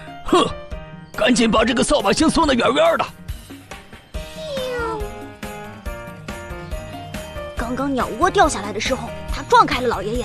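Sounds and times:
speech: 1.3 - 3.2, 7.8 - 10.2
kitten meowing: 4.2 - 5.3.

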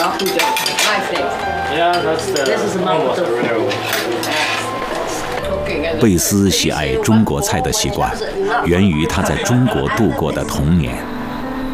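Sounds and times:
dishes, pots and cutlery clinking in a home kitchen: 0.0 - 5.5
indistinct voices murmuring: 0.0 - 11.5
speech: 0.2 - 11.1.

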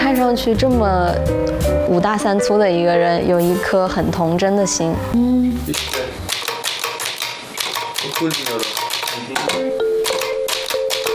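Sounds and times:
speech: 0.1 - 6.2, 8.2 - 9.9
manual typewriter keys clacking: 5.7 - 11.1.

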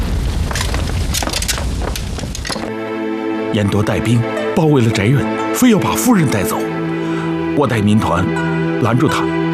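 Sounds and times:
house fire roaring and crackling in a lady's room: 0.0 - 2.8
speech: 3.5 - 6.7, 7.6 - 9.4.

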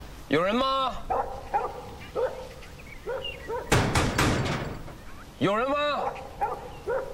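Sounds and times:
speech: 0.3 - 1.4, 5.4 - 6.2
dog left alone at home barking: 1.1 - 3.8, 6.0 - 7.1.

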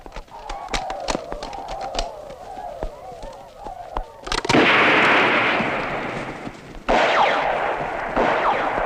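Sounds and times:
machine gun fire in battle: 4.5 - 8.8.

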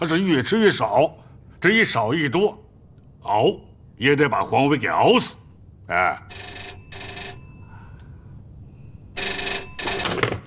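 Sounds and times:
speech: 0.0 - 2.6, 3.2 - 6.5
telephone ringing at a military command headquarters: 6.3 - 7.8, 9.2 - 10.4.

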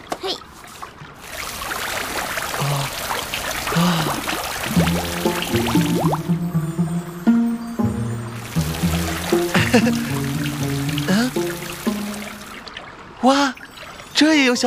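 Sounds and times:
water poured out splashing in a steady hissing stream: 0.0 - 6.8, 8.1 - 14.6
bright tonal melody: 4.7 - 12.6.

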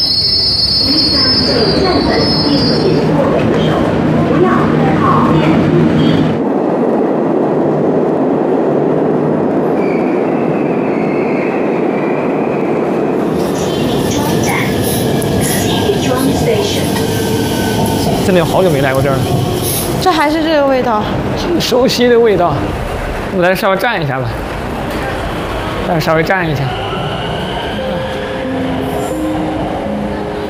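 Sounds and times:
subway train wheels screeching into the station: 0.0 - 3.8, 13.2 - 20.5, 24.9 - 29.5
subway train rolling rumble arriving at a station: 0.0 - 30.4
speech: 18.6 - 19.4, 20.2 - 24.5, 25.9 - 26.8.

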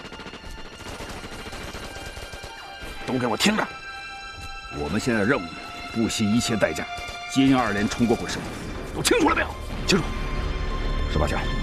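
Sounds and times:
distant crackling gunfire from a company of soldiers: 0.0 - 3.0
speech: 3.1 - 3.8, 4.7 - 10.2, 11.1 - 11.6.

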